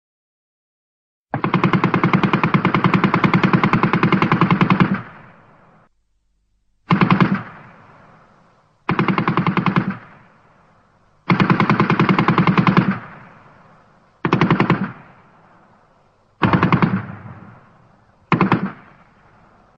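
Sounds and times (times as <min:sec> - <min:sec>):
machine gun firing: 0:01.4 - 0:05.8, 0:06.9 - 0:08.3, 0:08.9 - 0:10.5, 0:11.2 - 0:15.6, 0:16.4 - 0:19.6.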